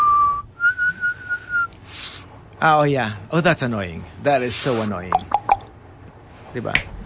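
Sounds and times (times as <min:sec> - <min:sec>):
shrill street-style call whistle: 0:00.0 - 0:02.2, 0:04.6 - 0:05.0
speech: 0:02.6 - 0:05.4, 0:06.6 - 0:07.0.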